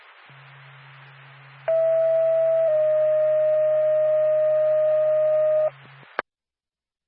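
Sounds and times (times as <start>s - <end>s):
low hum: 0.0s - 6.2s
radio hiss: 0.0s - 6.2s
loud two-tone radio dispatch paging alert: 1.7s - 5.7s.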